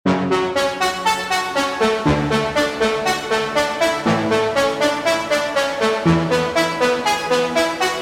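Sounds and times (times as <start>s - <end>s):
orchestral brass: 0.1s - 7.9s.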